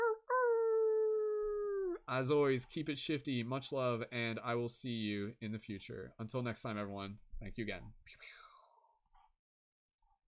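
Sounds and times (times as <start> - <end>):
person imitating a wolf howl: 0.0 - 2.0
speech: 2.1 - 8.4.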